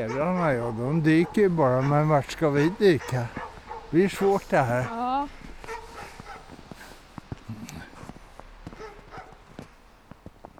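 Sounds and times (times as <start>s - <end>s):
speech: 0.0s - 5.4s
several larger tied-up dogs barking and yipping: 0.0s - 6.8s, 8.7s - 9.6s
faint footsteps: 0.0s - 10.5s.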